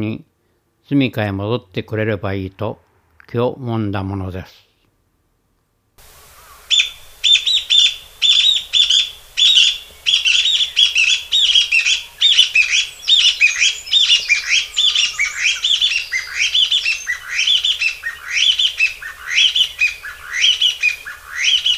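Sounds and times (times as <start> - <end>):
speech: 0.0 - 4.7
Chinese bamboo partridge calling: 6.1 - 21.7.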